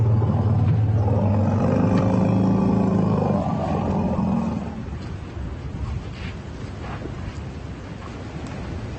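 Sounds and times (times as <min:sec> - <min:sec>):
two elephant herds exchanging deep greeting rumbles: 0:00.0 - 0:05.0.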